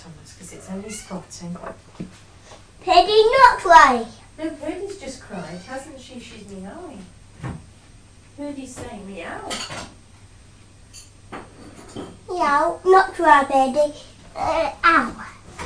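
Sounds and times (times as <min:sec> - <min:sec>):
speech: 0:00.3 - 0:07.6, 0:08.4 - 0:10.0, 0:11.9 - 0:15.4
cat meowing asking for food: 0:00.7 - 0:01.3
dishes and cutlery clattering: 0:09.5 - 0:09.9.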